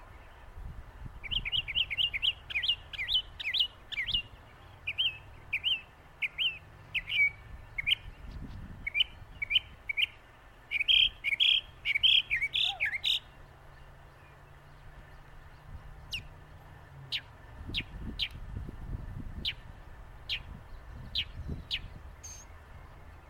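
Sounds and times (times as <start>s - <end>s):
northern mockingbird song: 0.0s - 23.2s.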